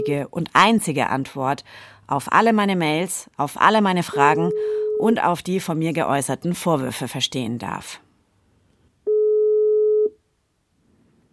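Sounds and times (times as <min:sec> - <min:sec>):
telephone call tone: 0:00.0 - 0:00.2, 0:04.1 - 0:05.1, 0:09.1 - 0:10.2
speech: 0:00.0 - 0:08.0.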